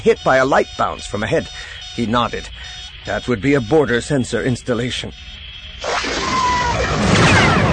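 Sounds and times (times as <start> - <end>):
speech: 0.0 - 5.4
laser fire shot down into a forest: 5.8 - 7.7
loud roaring explosion of a bunker: 5.8 - 7.7.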